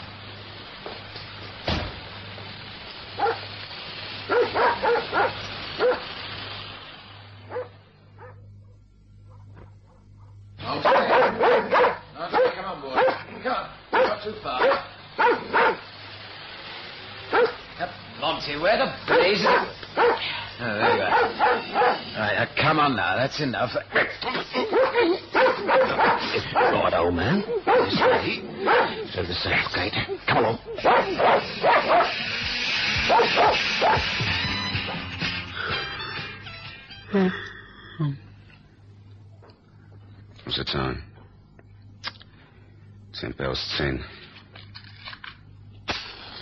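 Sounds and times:
low steady hum: 0.0 - 32.3, 34.3 - 46.4
dog barking: 3.2 - 3.4, 4.3 - 6.1, 7.5 - 13.3, 13.9 - 15.9, 17.3 - 17.6, 19.1 - 22.1, 24.6 - 29.1, 30.3 - 32.2, 33.1 - 34.1
speech: 23.2 - 24.8, 27.0 - 31.5, 37.2 - 37.4, 43.2 - 44.1.

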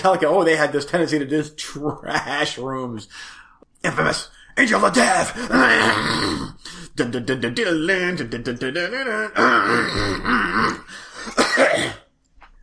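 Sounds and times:
speech: 0.0 - 12.0
long raspy throat clearing: 9.4 - 12.1.

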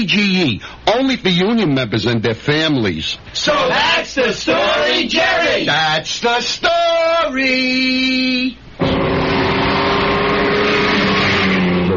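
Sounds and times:
speech: 0.0 - 9.3
Alfa Romeo car engine roaring: 8.8 - 11.9.

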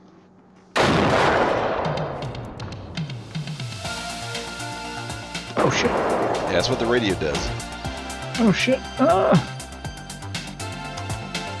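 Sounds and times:
video game thudding artillery-like bursts: 0.8 - 3.0, 5.5 - 8.2
video game explosive blast: 0.8 - 3.4, 5.6 - 7.8
speech: 5.6 - 7.8, 8.4 - 9.5.

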